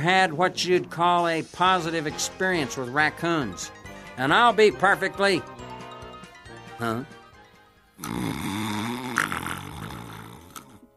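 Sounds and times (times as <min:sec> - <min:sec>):
speech: 0:00.0 - 0:05.6, 0:06.8 - 0:07.2, 0:08.0 - 0:08.5
performed cartoonish snore: 0:08.0 - 0:10.9.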